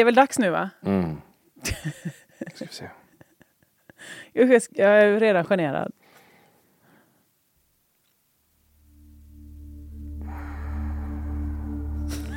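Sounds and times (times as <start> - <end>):
speech: 0.0 - 3.0, 4.0 - 6.0
low steady droning tone: 8.8 - 12.3
exaggerated heavy breathing: 10.1 - 12.3
laughter: 12.1 - 12.3.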